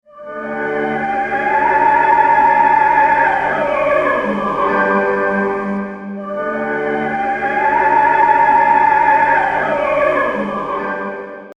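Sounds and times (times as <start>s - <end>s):
opera singing: 0.1s - 11.5s.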